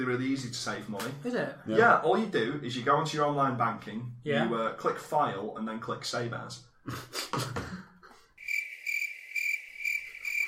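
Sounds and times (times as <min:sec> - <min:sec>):
speech: 0:00.0 - 0:07.6
crickets chirping comedy sound effect: 0:08.4 - 0:10.4.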